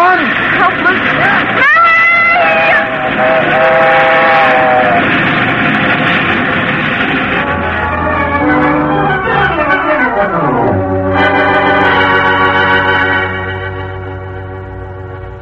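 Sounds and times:
fast train roaring past: 0.0 - 15.3
train whistle blaring: 2.4 - 5.2, 7.4 - 15.3.

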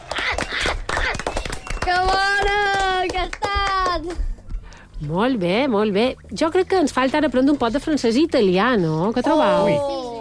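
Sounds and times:
people whooping and calling out: 0.0 - 2.0
small group applauding with quick clapping: 0.0 - 4.4
speech: 5.0 - 10.0.

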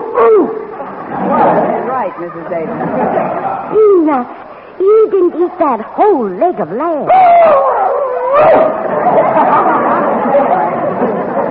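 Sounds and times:
laughter: 0.9 - 4.1, 8.5 - 11.4
speech: 2.0 - 7.8, 8.4 - 9.8
dog barking and yelping: 7.1 - 8.8.

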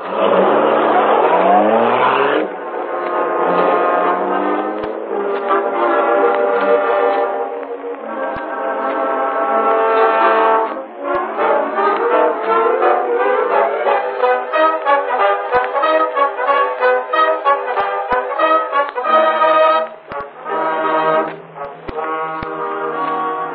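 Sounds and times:
car engine revving as the car drives off: 0.0 - 23.5.

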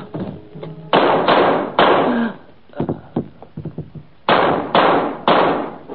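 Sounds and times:
loud gunshots: 0.9 - 2.3, 4.3 - 5.8.

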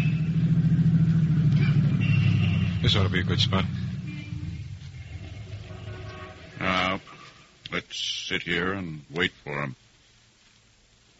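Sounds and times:
car engine rumble pulling in to park at a curb: 0.0 - 8.3
speech: 2.8 - 3.9, 8.0 - 9.8.

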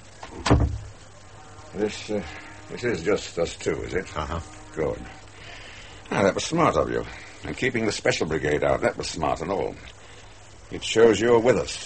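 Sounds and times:
office door being shut: 0.2 - 0.9
speech: 1.8 - 5.2, 6.1 - 10.0, 10.7 - 11.8.

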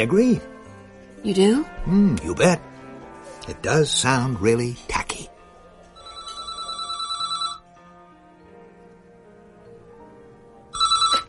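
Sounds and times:
speech: 0.0 - 0.6, 1.2 - 2.7, 3.4 - 5.3
telephone ringing at a country club: 6.0 - 7.7, 10.8 - 11.2.

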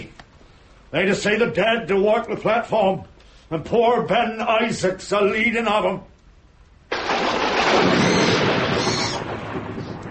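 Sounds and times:
speech: 0.9 - 6.1
rolling thunder in a storm: 6.9 - 10.0.

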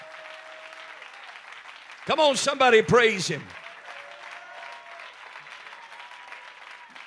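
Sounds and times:
congregation clapping: 0.0 - 7.0
speech: 2.0 - 3.6
man calling out loudly: 2.1 - 3.5.

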